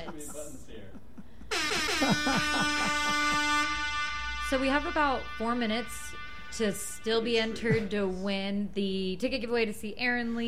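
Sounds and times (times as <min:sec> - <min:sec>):
laughter: 0:00.0 - 0:03.7, 0:07.5 - 0:08.2
speech: 0:00.2 - 0:03.3, 0:04.5 - 0:10.4
loud sustained air horn blast: 0:01.5 - 0:08.4.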